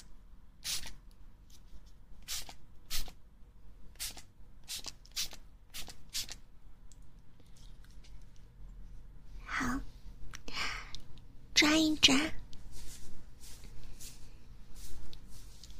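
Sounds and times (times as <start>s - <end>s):
hair setting spray hissing in short puffs: 0.6s - 0.9s, 2.2s - 3.1s, 4.0s - 6.4s
speech: 11.7s - 12.4s.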